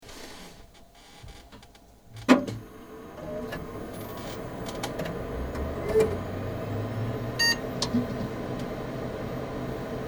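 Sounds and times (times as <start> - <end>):
PC starting up: 2.6 - 10.0.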